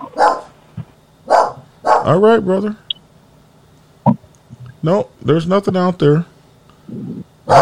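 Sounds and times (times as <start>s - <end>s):
dog barking at front door: 0.0s - 0.6s, 1.3s - 2.2s, 7.5s - 7.6s
speech: 2.0s - 2.8s, 4.8s - 6.3s, 6.9s - 7.6s.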